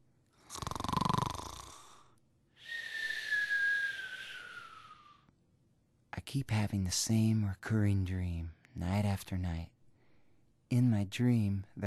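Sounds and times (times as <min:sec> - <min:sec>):
person asleep in bed snoring with a rattling inhale and whistling exhale: 0:00.4 - 0:02.2
speech: 0:06.3 - 0:09.8, 0:10.7 - 0:11.8.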